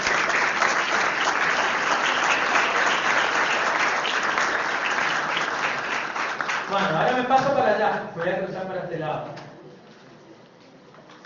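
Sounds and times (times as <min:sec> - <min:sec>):
audience applause for a teacher of the company: 0:00.0 - 0:07.3
speech: 0:06.8 - 0:09.4.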